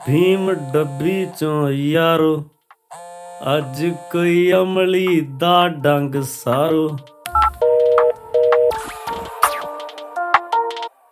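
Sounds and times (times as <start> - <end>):
speech: 0.0 - 2.5, 3.4 - 7.1
telephone keypad dual-pitch dialing tones: 7.3 - 8.8.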